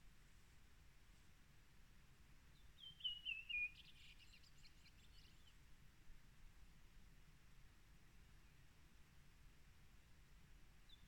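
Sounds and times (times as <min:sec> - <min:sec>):
low background hiss: 0:00.0 - 0:11.0
bird whistled call: 0:02.8 - 0:04.0.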